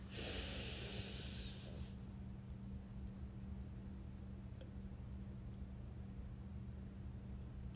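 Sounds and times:
deep belly-breathing exhale: 0.0s - 2.0s
steady low hum: 0.0s - 7.7s.

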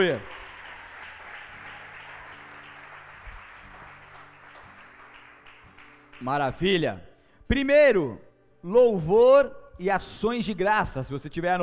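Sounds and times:
speech: 0.0s - 0.3s, 6.2s - 11.6s
large crowd applauding during a sermon: 0.0s - 6.5s.

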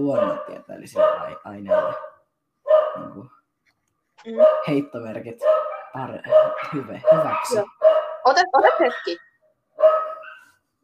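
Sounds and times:
speech: 0.0s - 2.1s, 2.7s - 3.4s, 4.2s - 10.1s
dog barking from a screen: 0.0s - 3.3s, 4.4s - 9.2s, 9.8s - 10.6s.

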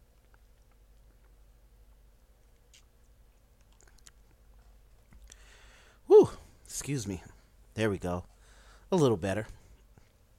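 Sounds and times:
low steady hum: 0.0s - 10.3s
person sipping a drink: 3.6s - 4.3s
speech: 6.8s - 8.3s, 8.9s - 9.6s.

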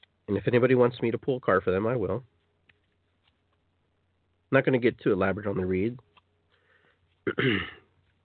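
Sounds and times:
speech: 0.3s - 2.4s, 4.5s - 6.1s, 7.2s - 7.8s
person coughing: 7.2s - 7.9s.

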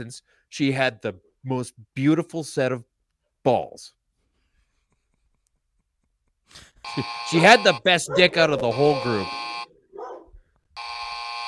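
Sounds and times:
speech: 0.0s - 4.0s, 6.5s - 9.4s
buzzer-like tone: 6.9s - 9.7s, 10.8s - 11.4s
dog barking: 8.0s - 9.2s, 9.9s - 10.4s.

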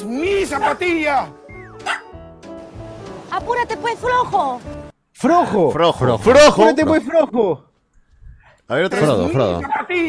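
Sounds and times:
speech: 0.5s - 2.0s, 3.3s - 7.7s, 8.7s - 10.0s
small dog yipping and barking: 1.7s - 2.2s.

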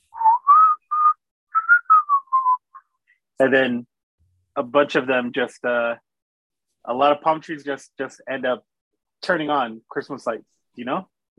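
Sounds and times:
person whistling a short Christmas tune: 0.1s - 2.8s
speech: 3.4s - 3.9s, 4.6s - 6.0s, 6.8s - 11.3s.

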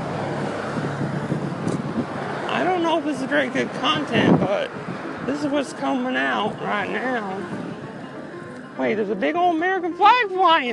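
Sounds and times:
wind buffeting the microphone: 0.0s - 8.4s
fast road traffic roar: 0.0s - 10.7s
speech: 3.0s - 7.6s, 8.8s - 10.7s.

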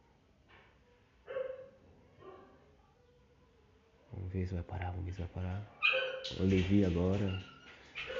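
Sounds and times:
faint hum: 0.0s - 8.1s
dogs barking outside: 1.3s - 2.7s, 5.6s - 8.1s
speech: 4.3s - 8.1s.

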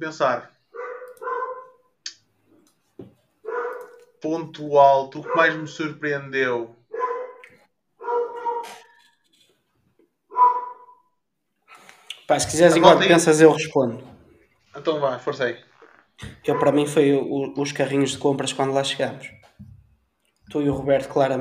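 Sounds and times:
speech: 0.0s - 0.6s, 4.2s - 6.8s, 12.3s - 14.1s, 14.8s - 19.5s, 20.5s - 21.3s
several dogs barking: 0.7s - 1.8s, 3.4s - 4.2s, 5.2s - 5.7s, 6.9s - 9.0s, 10.3s - 11.0s, 16.2s - 17.0s.

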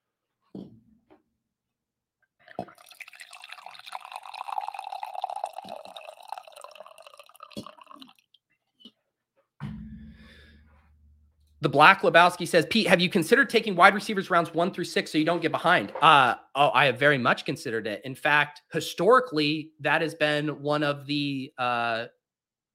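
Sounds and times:
coffee pouring from a carafe into a cup: 2.4s - 8.3s
speech: 11.6s - 22.2s.

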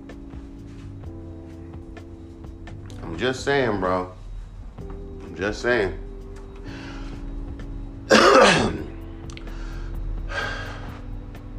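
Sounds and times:
speech: 3.1s - 4.2s, 5.4s - 6.0s
harsh cough: 8.1s - 8.9s
soft breathy exhales: 9.4s - 11.1s.

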